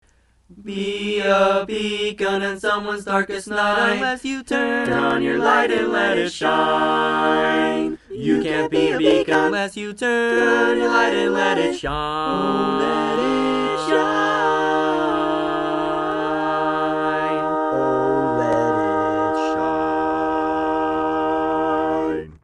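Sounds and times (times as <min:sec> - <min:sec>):
barbershop harmony singing a tag: 0:00.6 - 0:22.4.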